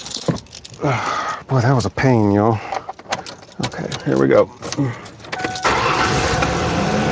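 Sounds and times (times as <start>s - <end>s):
speech: 0.8s - 2.8s, 3.7s - 5.1s
car engine starting and idling: 4.8s - 7.0s.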